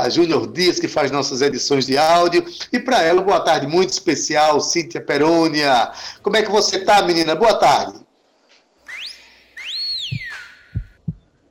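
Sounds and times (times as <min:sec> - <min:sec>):
speech: 0:00.0 - 0:08.0
person whistling sliding notes: 0:08.9 - 0:11.2
soft low thumps: 0:10.0 - 0:11.4.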